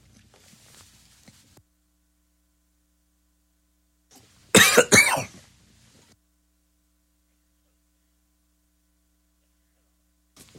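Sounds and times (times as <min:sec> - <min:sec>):
person with laryngitis coughing: 0:04.6 - 0:05.4.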